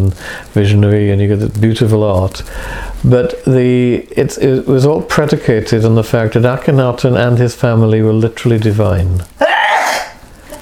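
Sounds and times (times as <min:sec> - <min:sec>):
speech: 0:00.0 - 0:09.5
person sneezing: 0:09.4 - 0:10.2.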